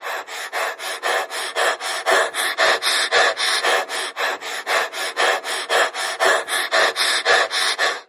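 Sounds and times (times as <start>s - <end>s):
fast pulsing vocal breaths: 0.0s - 8.0s.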